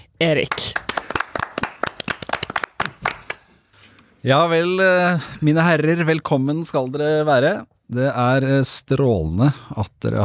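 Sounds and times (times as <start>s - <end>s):
speech: 0.2s - 0.8s, 4.2s - 10.2s
crowd standing ovation applause: 0.7s - 3.4s.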